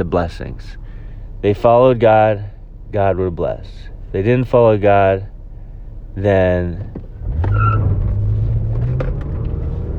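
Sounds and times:
speech: 0.0s - 0.8s, 1.4s - 5.3s, 6.2s - 7.7s
car driving past: 7.2s - 9.9s.

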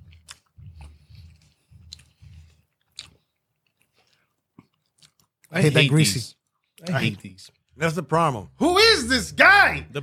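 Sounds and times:
chewing fast-food chicken wings: 0.0s - 5.6s
speech: 5.5s - 10.0s.

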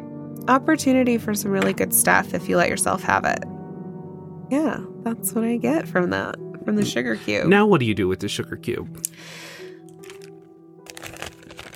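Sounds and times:
speech: 0.4s - 3.5s, 4.5s - 9.4s
small plastic baggie being handled: 9.9s - 11.7s.

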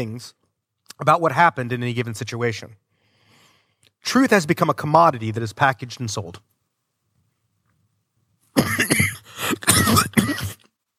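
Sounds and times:
speech: 0.0s - 0.4s, 1.0s - 2.8s, 4.0s - 6.5s
harsh coughing: 8.6s - 10.7s.

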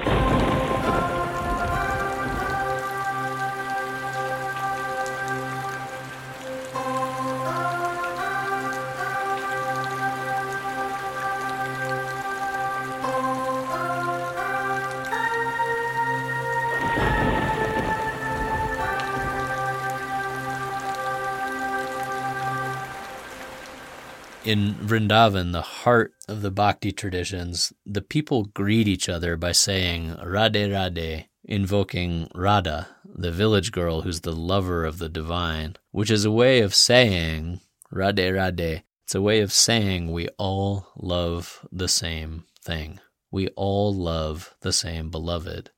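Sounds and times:
rolling thunder: 0.0s - 3.1s, 16.6s - 19.8s
slow sustained musical tones shifting in pitch: 0.0s - 24.8s
heavy rain: 0.0s - 25.2s
speech: 24.5s - 45.7s.

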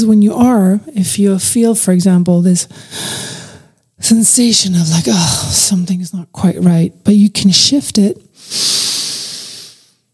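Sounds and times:
speech: 0.0s - 3.4s, 4.0s - 9.0s
person inhaling and holding the breath: 2.7s - 3.8s, 8.4s - 10.0s.

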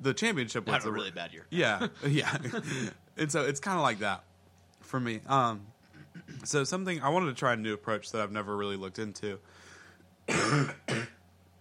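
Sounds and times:
speech: 0.0s - 9.7s, 10.3s - 11.0s
laughter: 1.6s - 3.0s
harsh raspy coughs: 5.8s - 6.5s, 10.3s - 11.2s.

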